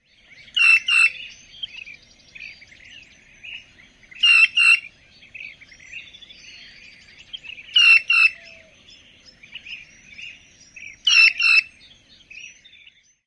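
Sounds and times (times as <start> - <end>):
Green Jay piping calls: 0.6 - 1.3, 4.2 - 4.9, 7.7 - 8.6, 11.0 - 11.7.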